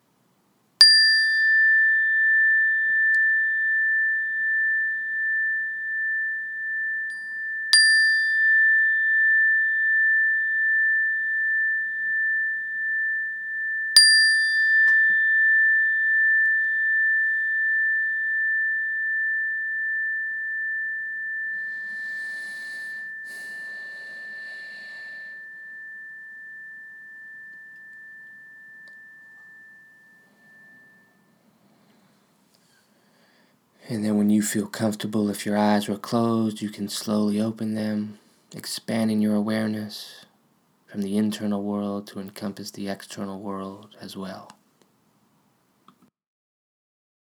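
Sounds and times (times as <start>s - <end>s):
meditation bell struck with a long pure sustained tone: 0.8s - 34.9s
speech: 33.9s - 40.2s, 40.9s - 44.6s.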